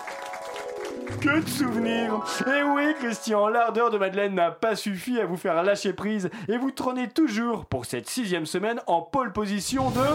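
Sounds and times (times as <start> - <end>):
audience applause: 0.0 - 2.3
speech: 1.1 - 10.1.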